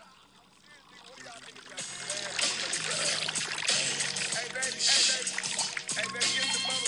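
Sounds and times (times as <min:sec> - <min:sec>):
faint voices: 0:00.0 - 0:06.8
liquid pouring into a cup: 0:00.0 - 0:06.8.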